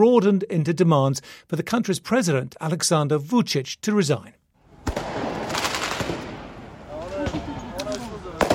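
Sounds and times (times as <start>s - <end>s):
speech: 0.0s - 5.1s
fireworks cracking and popping on a street during a protest: 4.8s - 8.5s.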